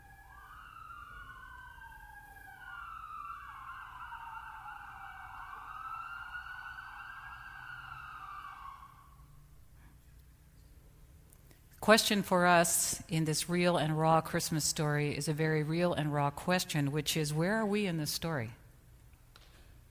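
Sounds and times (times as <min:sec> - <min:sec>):
emergency vehicle sirens wailing outside: 0:00.0 - 0:09.5
speech: 0:11.9 - 0:18.6.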